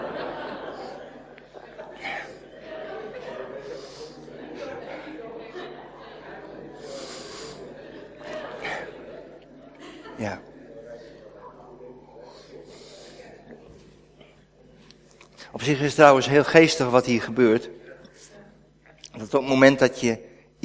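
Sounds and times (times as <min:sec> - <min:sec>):
laughter: 0:00.0 - 0:14.8
low hum: 0:00.0 - 0:20.6
speech: 0:10.2 - 0:10.5, 0:15.6 - 0:17.8, 0:19.3 - 0:20.6
person sipping water: 0:14.8 - 0:15.5.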